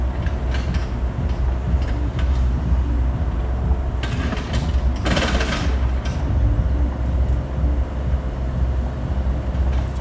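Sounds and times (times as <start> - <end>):
low rumble of street traffic outside a window: 0.0 - 10.0
clanks: 0.1 - 2.5, 4.0 - 6.3.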